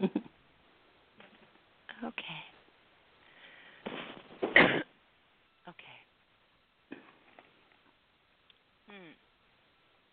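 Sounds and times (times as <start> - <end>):
speech: 0.0 - 0.3
person with flu coughing roughly: 4.5 - 4.9.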